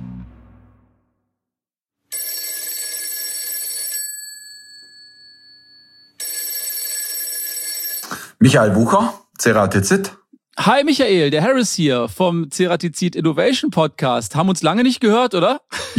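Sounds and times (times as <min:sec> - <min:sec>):
ringing tone of an outgoing telephone call: 0:02.1 - 0:08.1
speech: 0:08.4 - 0:15.9.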